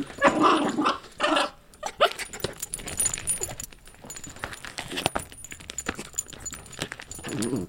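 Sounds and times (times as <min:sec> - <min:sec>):
dog growling and snarling while attacking a canvas: 0:00.0 - 0:01.6, 0:07.2 - 0:07.6
dog pawing and tugging a canvas, rustling and scratching: 0:00.0 - 0:07.6
jingling as a dog paws and tugs a canvas: 0:01.6 - 0:07.6.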